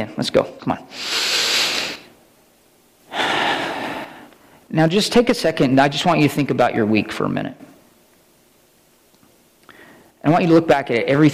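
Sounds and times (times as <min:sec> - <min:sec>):
speech: 0:00.0 - 0:01.2, 0:04.7 - 0:07.7, 0:10.2 - 0:11.3
deep breathing: 0:00.9 - 0:02.1, 0:03.1 - 0:04.7, 0:09.6 - 0:10.2.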